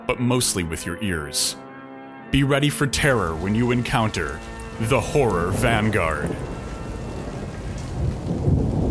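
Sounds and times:
speech: 0.1s - 1.7s, 2.3s - 6.6s
rain falling: 2.9s - 8.8s
rolling thunder: 3.1s - 8.8s.

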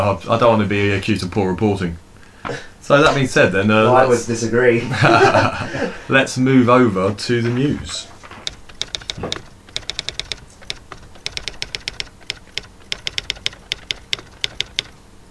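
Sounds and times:
speech: 0.0s - 8.1s
laughter: 4.8s - 6.1s
typewriter keystrokes: 8.4s - 15.0s.

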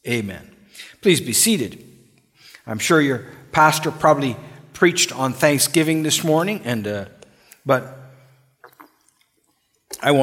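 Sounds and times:
speech: 0.0s - 1.9s, 2.6s - 8.0s, 10.0s - 10.2s
water sloshing in a preacher's glass during a church sermon: 8.7s - 10.0s.

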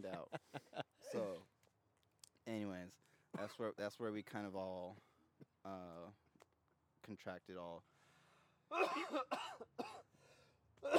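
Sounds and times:
laughter: 0.0s - 1.4s
speech: 0.0s - 1.5s, 2.5s - 6.2s, 7.0s - 7.9s, 8.7s - 10.0s, 10.8s - 10.9s
person coughing hard after smoking weed: 8.7s - 10.1s.

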